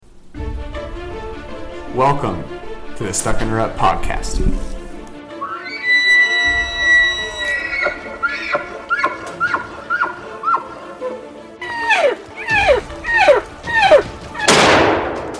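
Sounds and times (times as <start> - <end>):
speech: 2.0 - 4.7
high descending calls: 5.3 - 14.5
hunting gunshot: 14.5 - 15.3.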